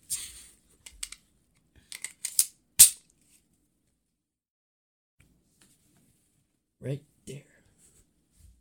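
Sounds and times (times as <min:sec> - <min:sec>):
unloaded handgun action clicking with magazine removed: 0:01.9 - 0:03.0
speech: 0:06.8 - 0:07.5.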